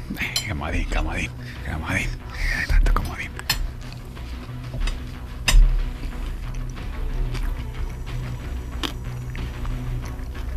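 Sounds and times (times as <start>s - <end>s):
speech: 0.1s - 3.4s
chewing hard crunchy food: 3.3s - 10.5s.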